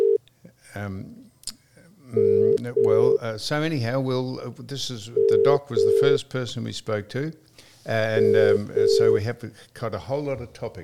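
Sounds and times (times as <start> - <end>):
phone ringback tone: 0.0 - 0.2, 5.2 - 6.2, 8.2 - 9.2
speech: 0.7 - 1.2, 2.1 - 10.8.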